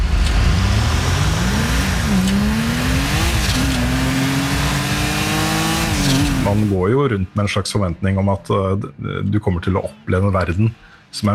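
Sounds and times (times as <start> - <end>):
video game car engine revving through gear changes: 0.0 - 7.5
speech: 6.6 - 11.3.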